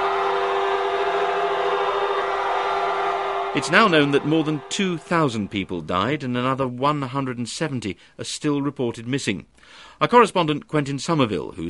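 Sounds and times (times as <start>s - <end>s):
car horns blaring: 0.0s - 5.9s
speech: 3.6s - 11.6s.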